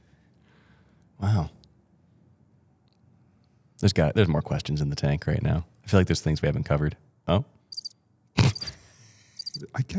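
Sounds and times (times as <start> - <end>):
speech: 3.8 - 7.6, 9.6 - 9.9
faint lingering trill: 7.7 - 8.0, 9.4 - 9.6
quiet high-pitched cricket chirps: 7.7 - 8.7, 9.4 - 9.6.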